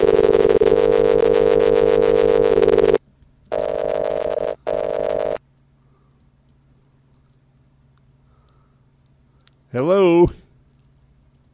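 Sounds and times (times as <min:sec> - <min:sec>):
Skype call electronic ringing tone: 0:00.0 - 0:05.4
speech: 0:09.8 - 0:10.2.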